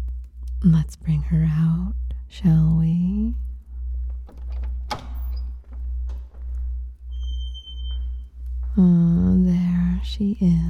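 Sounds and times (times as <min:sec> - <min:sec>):
steady pulsing low hum: 0:00.0 - 0:10.6
speech: 0:00.6 - 0:03.5
door opening thunk: 0:04.2 - 0:06.4.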